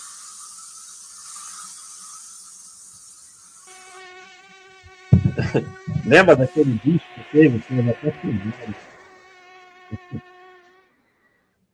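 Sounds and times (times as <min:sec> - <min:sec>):
mosquito whine: 0:00.0 - 0:11.3
sudden thump: 0:05.2 - 0:05.4
laughter: 0:05.2 - 0:08.8, 0:09.9 - 0:10.2
speech: 0:05.4 - 0:08.9.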